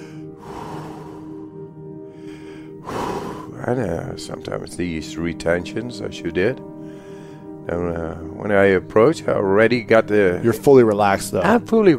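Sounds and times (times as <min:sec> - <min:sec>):
person breathing deeply before cold water immersion: 0:00.0 - 0:03.6, 0:06.8 - 0:07.6
speech: 0:03.6 - 0:06.7, 0:07.7 - 0:11.9.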